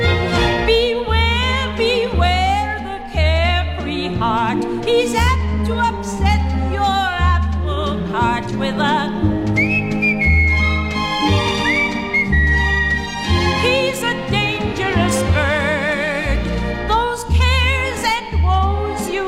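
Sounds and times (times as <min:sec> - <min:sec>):
song with bass and backing instruments: 0:00.0 - 0:19.2
clear high whistled melody with long sustained notes: 0:09.5 - 0:13.4.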